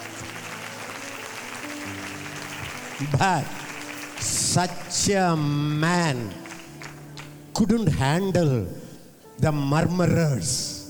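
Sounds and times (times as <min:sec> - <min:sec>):
church audience clapping during a sermon: 0:00.0 - 0:07.5
speech: 0:03.0 - 0:03.6, 0:04.2 - 0:06.4, 0:07.6 - 0:08.8, 0:09.4 - 0:10.8.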